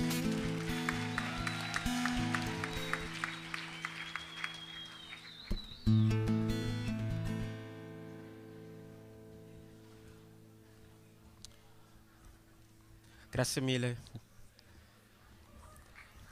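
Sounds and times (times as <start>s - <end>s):
audience applause: 0.0s - 5.9s
music: 0.0s - 13.1s
speech: 13.4s - 14.2s.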